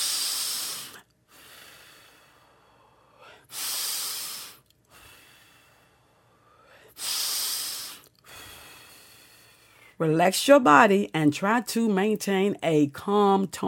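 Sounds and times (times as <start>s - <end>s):
slow deep human breaths: 0.0s - 10.0s
speech: 10.0s - 13.6s.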